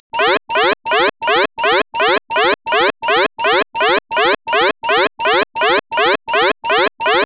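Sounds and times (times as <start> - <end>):
modern alarm: 0.1 - 7.2.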